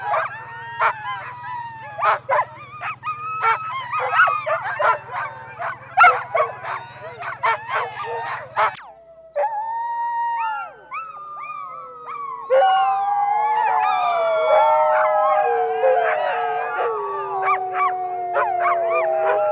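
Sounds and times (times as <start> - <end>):
Siberian Husky yipping and whining: 0.0 - 9.6, 15.0 - 19.5
Siberian Husky howling: 0.0 - 19.5
Siberian Husky barking: 2.0 - 8.8.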